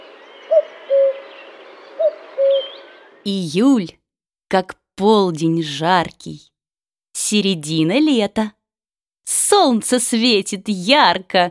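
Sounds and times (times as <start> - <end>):
cuckoo calling in a shady grove: 0.0 - 3.2
faintly hissy outdoor background: 0.0 - 3.9
speech: 3.2 - 6.5, 7.2 - 8.6, 9.3 - 11.5.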